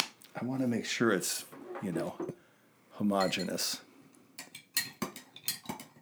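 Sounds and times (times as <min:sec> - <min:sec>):
speech: 0:00.4 - 0:02.4, 0:03.0 - 0:03.9
metal cocktail spoon stirring hot sauce and vodka in a glass: 0:03.2 - 0:03.6, 0:04.4 - 0:06.0.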